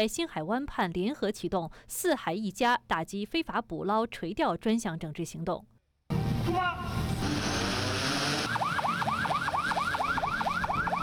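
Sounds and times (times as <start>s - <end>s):
speech: 0.0s - 5.7s
patrol boat engines rumbling: 6.2s - 11.0s
patrol boat sirens yelping: 7.2s - 11.0s.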